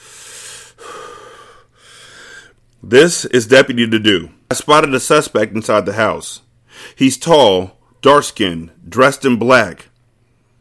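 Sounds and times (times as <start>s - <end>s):
man taking deep breaths: 0.0s - 2.6s, 6.6s - 7.0s
speech: 2.8s - 9.9s.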